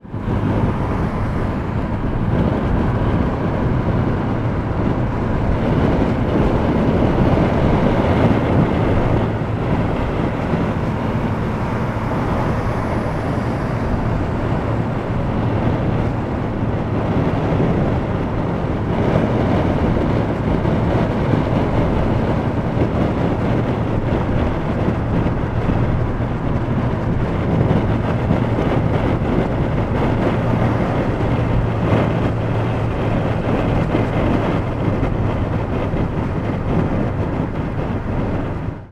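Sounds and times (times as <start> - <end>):
car interior road noise on a motorway: 0.0 - 38.9
slight air through open car window: 0.0 - 38.9.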